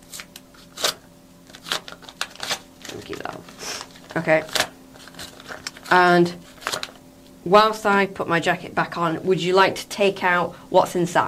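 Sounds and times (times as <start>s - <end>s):
paper envelope being opened: 0.0s - 7.0s
speech: 4.2s - 4.6s, 5.9s - 6.5s, 7.4s - 11.2s.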